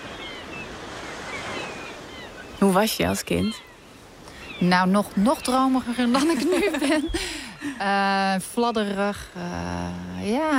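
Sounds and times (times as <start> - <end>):
sea waves washing onto the beach at Noordwijk: 0.0 - 10.5
speech: 2.7 - 3.7, 4.6 - 10.5
laughter: 6.0 - 7.8.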